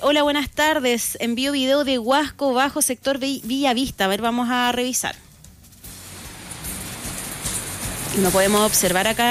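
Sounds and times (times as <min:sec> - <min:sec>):
speech: 0:00.0 - 0:05.3, 0:08.2 - 0:09.2
heavy rain falling: 0:05.9 - 0:09.2.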